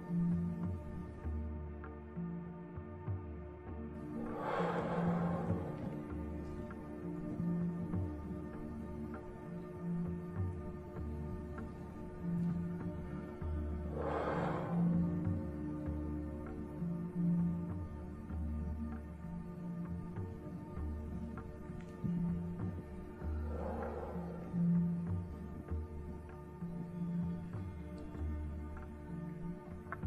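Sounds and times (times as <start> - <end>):
soft steady music bed: 0.0 - 30.0
slow deep breaths in and out: 4.0 - 18.3, 19.4 - 30.0.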